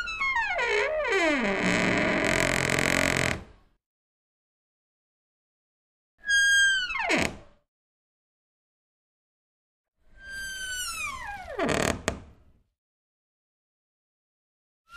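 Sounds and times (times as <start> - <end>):
wooden door creaking sharply: 0.2 - 3.5, 6.8 - 7.5, 11.1 - 12.3.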